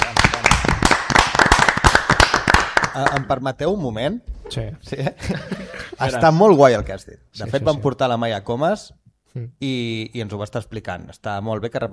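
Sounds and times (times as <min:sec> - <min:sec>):
audience applause: 0:00.0 - 0:03.2
speech: 0:03.0 - 0:11.9
laughter: 0:04.9 - 0:06.3.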